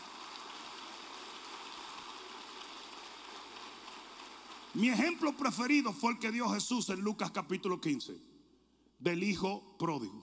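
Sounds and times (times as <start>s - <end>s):
large crowd applauding: 0.0s - 6.3s
speech: 4.7s - 8.3s, 9.0s - 10.2s.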